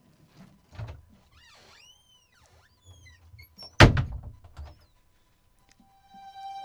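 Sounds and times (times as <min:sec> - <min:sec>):
door creaking and rattling as it swings: 0:00.7 - 0:04.8
door shutting tight with a solid thud: 0:03.7 - 0:04.7.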